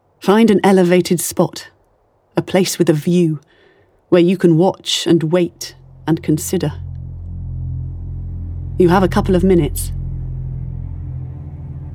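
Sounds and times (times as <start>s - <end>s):
speech: 0.2s - 1.8s, 2.4s - 6.8s, 8.8s - 10.0s
deep steady rumble of an approaching storm: 5.2s - 11.9s.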